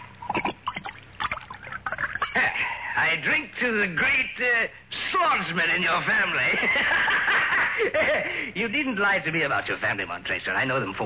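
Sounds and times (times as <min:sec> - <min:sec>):
wine pouring into a glass: 0:00.0 - 0:02.4
speech: 0:03.0 - 0:11.0
laughter: 0:06.2 - 0:08.5.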